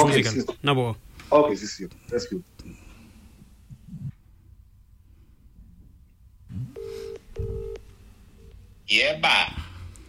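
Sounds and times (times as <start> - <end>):
speech: 0.0 - 2.8, 8.9 - 9.7
telephone dialing and ringing tones: 6.6 - 7.8.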